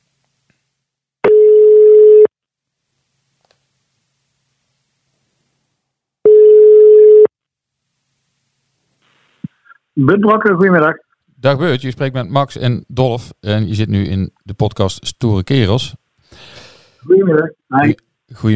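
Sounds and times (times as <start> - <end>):
telephone ringing tones on an outgoing call: 1.3 - 2.3, 6.2 - 7.3
speech: 10.0 - 18.5.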